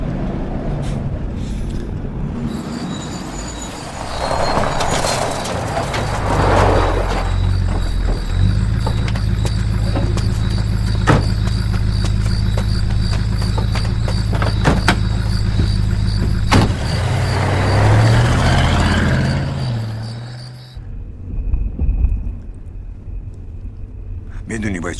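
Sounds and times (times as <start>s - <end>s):
car engine drone and road rumble: 0.0s - 24.9s.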